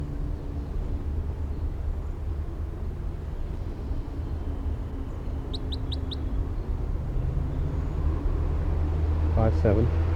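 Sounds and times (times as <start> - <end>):
steady windy outdoor rumble: 0.0 - 10.1
lone wild orange male bird chirping and calling: 5.0 - 6.7.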